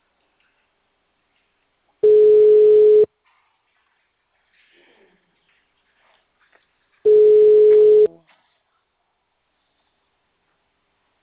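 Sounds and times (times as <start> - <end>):
telephone ringback tone on an unanswered call: 2.0 - 3.1, 7.1 - 8.1.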